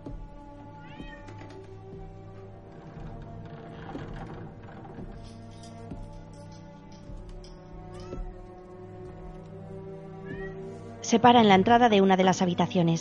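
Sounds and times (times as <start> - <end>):
cats meowing in a cluttered room: 0.8 - 1.5, 10.2 - 10.7
speech: 11.1 - 12.9.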